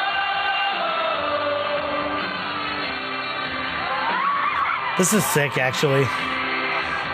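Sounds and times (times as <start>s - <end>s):
large concert crowd cheering and shouting: 0.0s - 7.1s
scattered whoops: 3.8s - 5.0s
speech: 5.0s - 6.4s.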